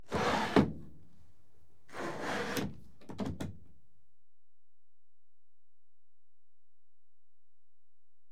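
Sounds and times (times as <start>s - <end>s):
sliding windows closing: 0.1s - 0.8s, 1.9s - 3.4s.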